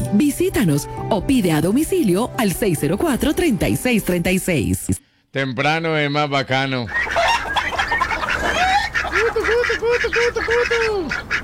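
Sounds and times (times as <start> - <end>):
speech: 0.1 - 7.1, 9.8 - 11.3
other fowl calls: 5.9 - 11.4
hen clucking: 6.8 - 11.4.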